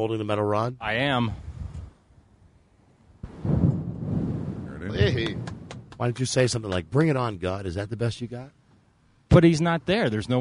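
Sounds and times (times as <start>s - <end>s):
speech: 0.0s - 1.5s, 4.9s - 8.6s, 9.3s - 10.3s
rolling thunder: 3.2s - 5.9s.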